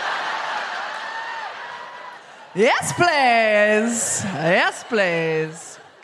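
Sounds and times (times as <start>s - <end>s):
live audience cheering in Auckland: 0.0s - 6.0s
speech: 2.6s - 5.8s.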